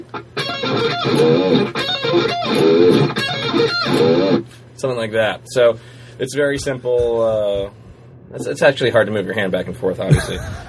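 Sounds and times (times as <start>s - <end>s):
distorted electric guitar playing D minor arpeggio riff mimicking a cell phone ringtone: 0.0s - 4.5s
speech: 1.0s - 1.8s, 4.8s - 10.6s
laughter: 10.1s - 10.6s.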